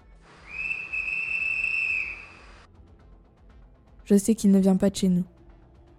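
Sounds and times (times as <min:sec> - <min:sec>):
shrill steady whistle blast: 0:00.3 - 0:02.7
speech: 0:04.1 - 0:05.4.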